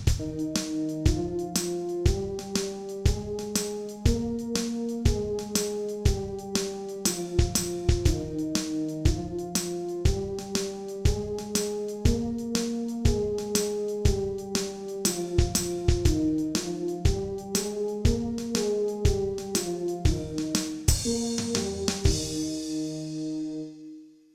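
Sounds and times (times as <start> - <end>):
brass playing F scale practice: 0.2 - 24.3.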